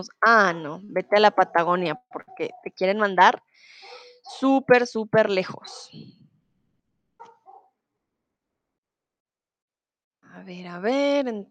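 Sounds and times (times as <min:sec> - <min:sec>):
speech: 0:00.0 - 0:06.2, 0:10.3 - 0:11.4
dog barking in Bogotá: 0:03.8 - 0:04.5, 0:07.2 - 0:07.7.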